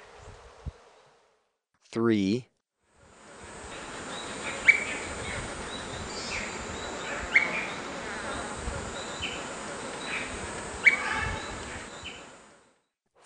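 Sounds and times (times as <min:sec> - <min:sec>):
speech: 0:02.0 - 0:02.5
low rumbling background noise: 0:03.0 - 0:12.6
brown-crested flycatcher calling in Ecuador: 0:03.7 - 0:12.3.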